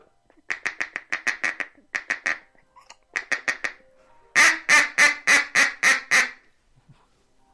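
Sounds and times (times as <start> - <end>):
harsh drawn-out quacks on a duck call: 0.5 - 2.4, 3.2 - 3.8, 4.4 - 6.4.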